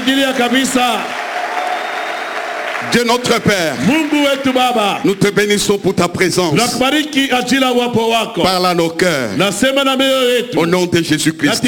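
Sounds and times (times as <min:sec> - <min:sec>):
church congregation applauding loudly: 0:00.0 - 0:05.8
speech: 0:00.1 - 0:01.2, 0:02.8 - 0:11.6.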